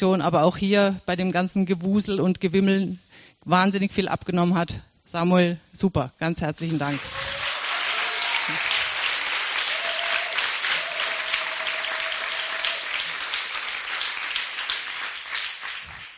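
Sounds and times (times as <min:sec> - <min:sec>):
speech: 0:00.0 - 0:07.3, 0:08.5 - 0:08.7
large conference audience applauding interpreters: 0:06.7 - 0:16.1
faint whistle or cheer from audience: 0:07.0 - 0:13.0.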